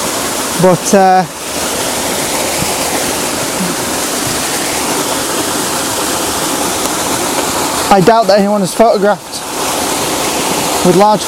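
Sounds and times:
waterfall roaring: 0.0 - 11.2
speech: 0.6 - 1.4, 7.9 - 9.3, 10.8 - 11.2.

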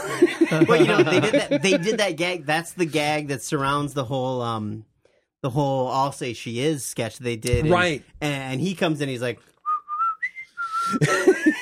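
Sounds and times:
laughter: 0.0 - 3.0, 10.9 - 11.6
speech: 0.1 - 9.5, 10.9 - 11.6
man whistling a short tune: 9.6 - 11.0.

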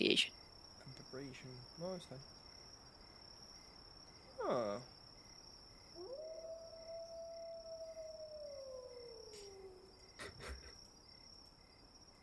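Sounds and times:
speech: 0.0 - 0.4, 1.2 - 2.4, 4.4 - 5.0
crickets chirring: 0.0 - 12.2
wolf howling in a forest: 4.3 - 4.8, 6.0 - 10.1.

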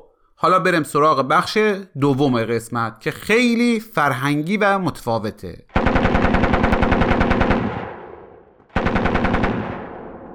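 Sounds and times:
speech: 0.4 - 5.7
machine gun fire: 5.7 - 10.3.

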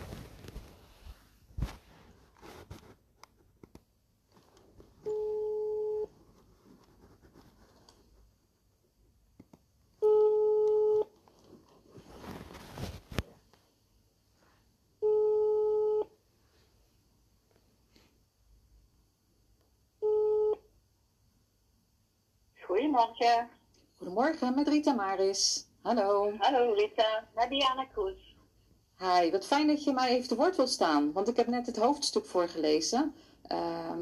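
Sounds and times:
telephone ringback tone heard while placing a call: 5.0 - 6.1, 10.0 - 11.1, 15.0 - 16.1, 20.0 - 20.6
speech: 22.9 - 28.3, 29.0 - 34.0.

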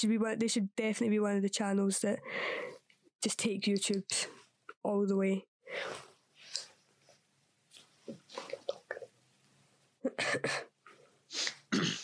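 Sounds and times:
speech: 0.0 - 6.7, 10.0 - 10.7
person coughing: 10.0 - 10.7, 11.5 - 12.0.

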